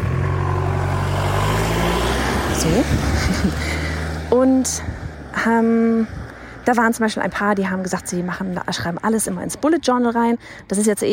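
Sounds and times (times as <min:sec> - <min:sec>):
car passing with engine hum and road noise: 0:00.0 - 0:06.8
speech: 0:02.6 - 0:11.1
laughter: 0:03.0 - 0:04.0.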